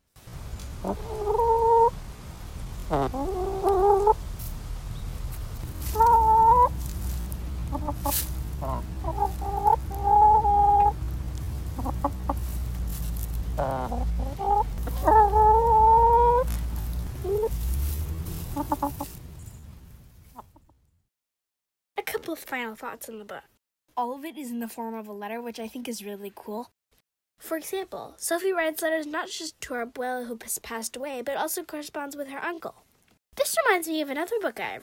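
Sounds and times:
low rumble: 0.2s - 20.2s
hens clucking: 0.6s - 4.2s, 5.6s - 19.2s
speech: 0.8s - 1.3s, 23.0s - 23.4s, 24.2s - 26.8s, 27.4s - 32.8s, 33.4s - 34.8s.

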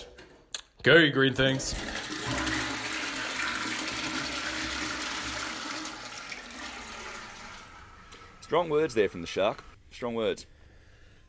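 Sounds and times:
speech: 0.8s - 2.0s, 8.5s - 10.5s
toilet flushing: 1.4s - 9.8s.

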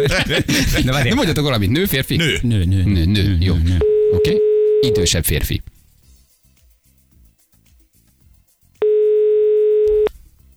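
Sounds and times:
laughter: 0.0s - 3.9s
speech: 0.0s - 5.7s
unanswered phone call ringing tone: 3.8s - 5.1s, 8.8s - 10.1s.

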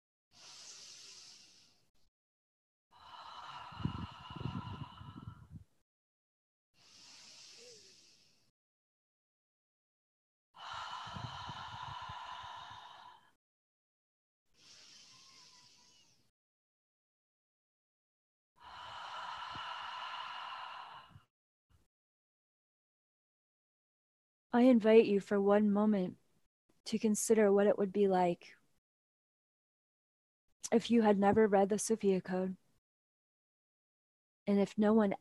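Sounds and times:
deep breaths in through the nose, out through the mouth: 0.3s - 2.1s, 3.0s - 5.7s, 6.8s - 8.5s, 10.6s - 13.4s, 14.6s - 16.3s, 18.6s - 21.3s
speech: 24.5s - 26.2s, 26.9s - 28.6s, 30.6s - 32.6s, 34.5s - 35.2s.

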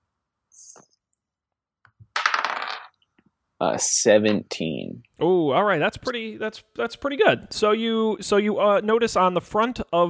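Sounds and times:
dice rolling during a tabletop roleplaying game: 2.0s - 3.1s
speech: 3.6s - 10.0s.

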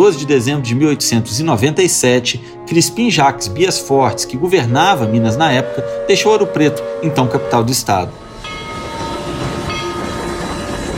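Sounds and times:
speech: 0.0s - 8.2s
metallic whining of a train: 2.5s - 10.9s
train rumbling on rails: 2.5s - 10.9s.

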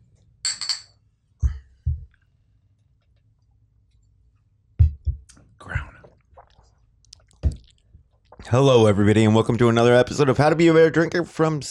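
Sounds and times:
glasses clinking in a toast: 0.4s - 1.0s
speech: 8.5s - 11.6s.

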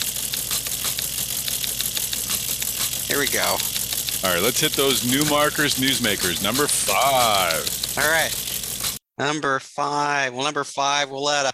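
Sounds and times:
low hum: 0.0s - 9.0s
rapid keystroke clicks of typing: 0.0s - 9.0s
speech: 3.2s - 8.4s, 9.2s - 11.5s.

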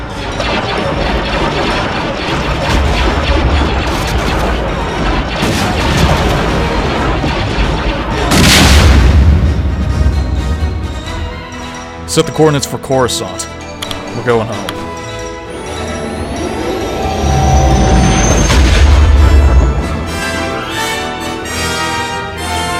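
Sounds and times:
continuous roar: 0.0s - 10.2s, 15.4s - 20.8s
dense rumbling blasts and crashes: 0.2s - 11.2s, 15.5s - 21.2s
loud booming burst: 0.3s - 10.6s, 15.6s - 20.9s
starship weapons fire on an enemy vessel: 0.4s - 9.5s
speech: 12.2s - 13.6s, 14.2s - 14.7s.

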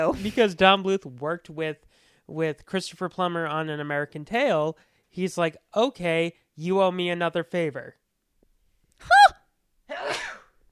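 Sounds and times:
speech: 0.0s - 8.0s
sneeze: 9.9s - 10.6s.

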